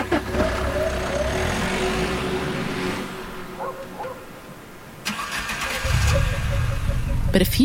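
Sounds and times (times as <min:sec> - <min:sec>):
car engine cranking, idling and revving: 0:00.0 - 0:07.6
speech: 0:07.4 - 0:07.6.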